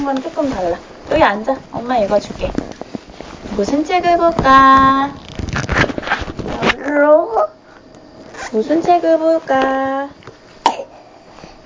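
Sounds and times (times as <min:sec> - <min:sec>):
speech: 0:00.0 - 0:02.7, 0:03.5 - 0:05.7, 0:06.8 - 0:07.5, 0:08.5 - 0:10.2
child coughing: 0:10.6 - 0:11.0.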